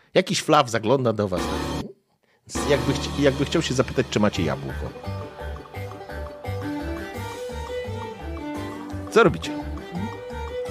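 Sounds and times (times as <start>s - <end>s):
speech: 0.1s - 1.8s, 2.5s - 5.2s, 9.2s - 9.7s
loud background music with thumping low beat: 1.4s - 1.8s, 2.6s - 10.6s.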